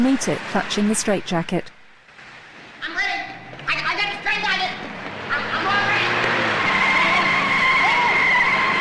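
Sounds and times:
speech: 0.0s - 1.8s
ambulance tires screeching in a skid on a hospital driveway: 3.4s - 8.8s.

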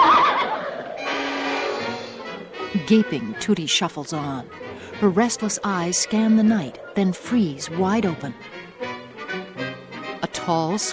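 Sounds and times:
draft horse hitched to a spoked-wheel buggy whinnying on a street at night: 0.0s - 8.9s
speech: 2.8s - 8.6s, 10.4s - 10.9s.

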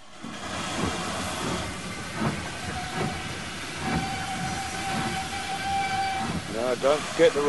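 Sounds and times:
train pulling into a railway station: 0.0s - 7.4s
train wheels clanking: 0.0s - 7.4s
train air hissing: 0.4s - 7.4s
train brake squeal: 1.9s - 7.4s
speech: 6.7s - 7.4s.

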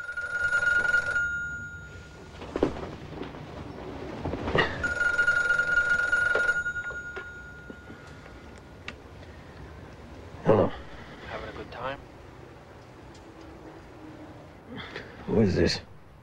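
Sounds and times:
telephone ringing in a motel room: 0.0s - 2.6s, 4.5s - 8.8s
speech: 15.4s - 15.8s.

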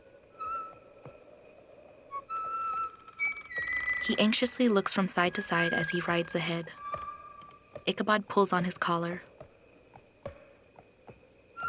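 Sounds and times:
lanky man whistling a slow tune while riding a horse: 0.4s - 0.8s, 2.1s - 4.0s
speech: 4.0s - 6.8s, 7.9s - 9.3s.

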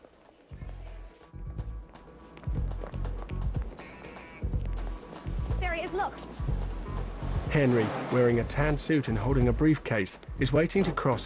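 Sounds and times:
running footsteps of people hurrying through glass doors along a cloistered walkway: 0.0s - 5.0s
speech: 5.8s - 6.5s, 7.5s - 11.2s.

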